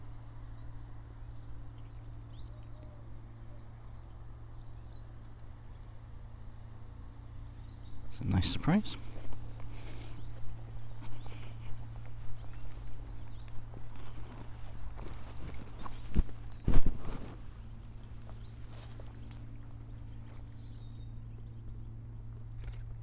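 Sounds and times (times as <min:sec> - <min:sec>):
great tits calling on a grassy slope: 0:00.1 - 0:22.3
steady low outdoor rumble: 0:05.4 - 0:23.0
chiffchaffs calling on a grassy slope: 0:07.5 - 0:19.3
speech: 0:08.2 - 0:09.1.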